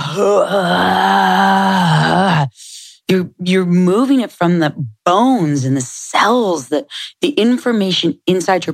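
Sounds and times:
loud sustained guttural moan during burpees in a class: 0.0s - 2.6s
speech: 0.2s - 2.2s, 3.1s - 8.7s.

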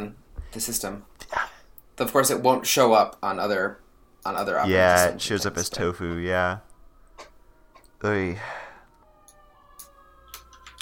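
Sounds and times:
speech: 0.0s - 1.4s, 2.0s - 6.7s, 8.0s - 8.6s
faint emergency siren outside: 2.1s - 10.8s.

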